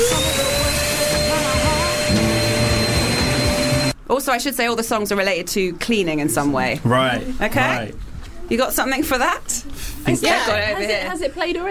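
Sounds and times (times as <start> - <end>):
loud vacuum cleaner droning and whining: 0.0 - 4.0
speech: 4.1 - 11.6.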